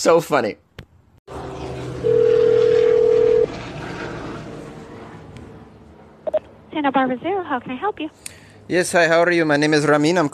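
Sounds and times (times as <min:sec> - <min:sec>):
speech: 0:00.0 - 0:00.6, 0:06.8 - 0:10.3
constant low hum: 0:01.3 - 0:08.7
steady loud telephone tone: 0:02.0 - 0:03.5.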